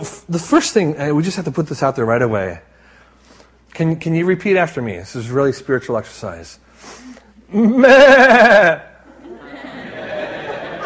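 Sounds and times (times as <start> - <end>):
speech: 0.3 - 2.7, 3.8 - 8.9
group of people imitating sheep bleating together: 7.5 - 8.9
crowd laughter: 8.0 - 10.8.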